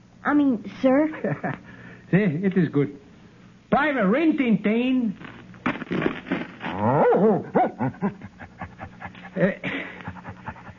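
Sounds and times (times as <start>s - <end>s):
speech: 0.2s - 3.0s, 3.7s - 5.3s, 6.8s - 8.4s, 9.4s - 9.8s
dog panting: 8.0s - 10.7s.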